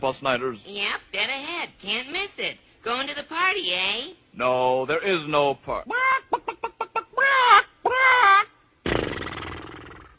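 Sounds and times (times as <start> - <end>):
speech: 0.0 - 6.2
chicken cackling: 5.9 - 8.6.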